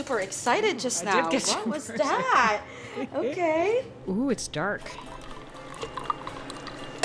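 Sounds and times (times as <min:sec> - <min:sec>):
speech: 0:00.1 - 0:05.1
fizzy sparkling wine poured into a champagne flute: 0:04.8 - 0:07.0
soft crackling bubbles of sparkling wine: 0:04.8 - 0:07.0.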